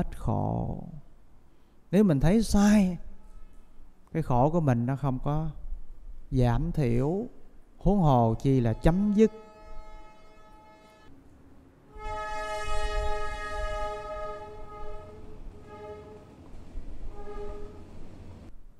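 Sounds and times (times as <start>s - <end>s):
speech: 0.0s - 1.0s, 1.9s - 3.1s, 4.1s - 5.6s, 6.3s - 9.4s
passing train horn multi-tone blast: 2.6s - 3.9s, 8.4s - 11.2s, 11.9s - 18.1s
deep rolling rumble of passing rail cars: 11.1s - 18.7s.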